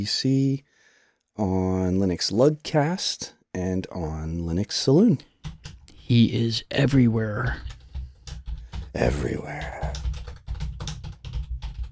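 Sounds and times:
speech: 0.0s - 0.8s, 1.4s - 7.8s, 9.0s - 10.0s
rapid typing on a computer keyboard: 5.4s - 6.0s, 7.4s - 11.8s.

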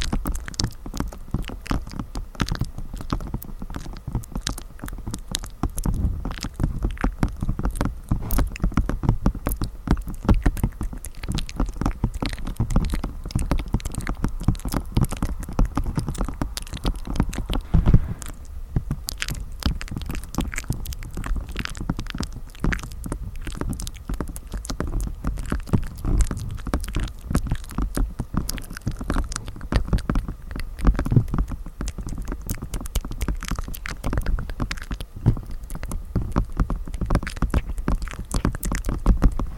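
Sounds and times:
soft mouth sounds against the microphone: 0.0s - 39.5s
low rumble: 12.1s - 22.3s.

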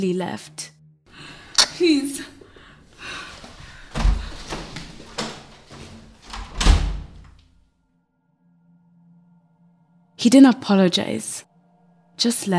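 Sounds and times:
speech: 0.0s - 0.8s, 1.8s - 2.4s, 10.2s - 11.5s, 12.2s - 12.5s
faint breathing: 1.1s - 1.6s, 2.4s - 4.6s
door thudding shut: 5.2s - 7.4s.

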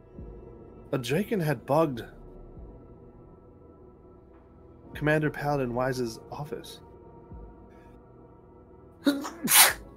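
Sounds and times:
speech: 0.9s - 2.2s, 5.0s - 6.9s, 9.0s - 9.7s
person sneezing: 9.1s - 9.8s.

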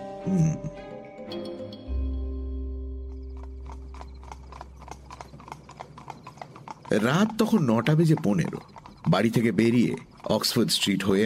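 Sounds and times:
speech: 0.2s - 1.5s, 6.9s - 11.2s
horse-drawn carriage hooves clip-clopping: 3.1s - 11.2s.

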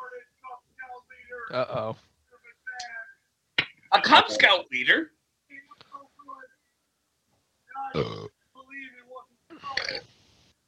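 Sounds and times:
speech: 1.5s - 2.1s, 3.9s - 5.2s, 7.9s - 8.3s
person burping: 7.9s - 8.4s, 9.5s - 10.1s.

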